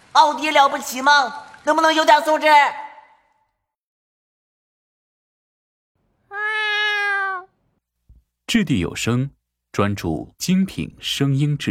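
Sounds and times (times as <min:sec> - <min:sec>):
speech: 0:00.2 - 0:02.8, 0:08.5 - 0:11.6
cat yowling violently: 0:06.3 - 0:07.5.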